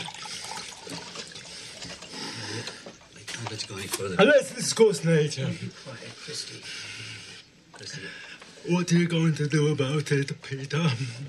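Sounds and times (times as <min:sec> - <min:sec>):
waiter pouring a drink into a glass: 0:00.0 - 0:02.1
speech: 0:03.5 - 0:07.1, 0:07.8 - 0:11.2.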